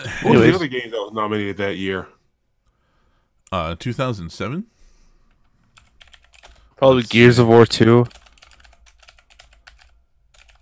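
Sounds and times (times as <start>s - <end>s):
speech: 0.0s - 2.2s, 3.5s - 4.8s, 6.8s - 8.2s
typing on a clicky mechanical computer keyboard: 5.8s - 6.6s, 8.0s - 10.5s.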